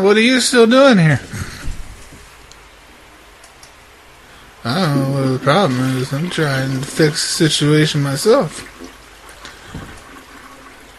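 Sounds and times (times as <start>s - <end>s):
speech: 0.0s - 1.4s, 4.6s - 8.9s
toilet flushing with rushing gurgling water: 4.6s - 10.9s.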